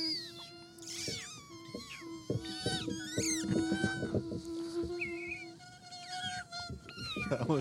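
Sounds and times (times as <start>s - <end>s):
cat meowing: 0.0s - 3.8s
steady low buzzing hum: 0.0s - 7.5s
speech: 7.3s - 7.5s.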